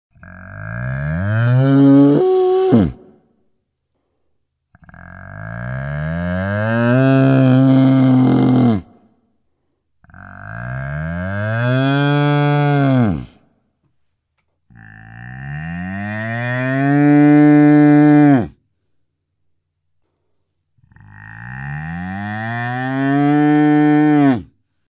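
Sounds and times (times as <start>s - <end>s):
bull mooing: 0.1s - 3.1s, 4.8s - 9.0s, 10.1s - 13.4s, 14.7s - 18.6s, 20.9s - 24.5s.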